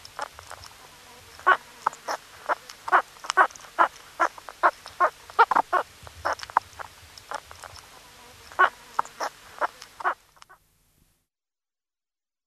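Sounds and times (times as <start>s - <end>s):
meerkat calls in quick bursts of brief chirping notes: 1.3s - 7.7s, 8.4s - 10.6s.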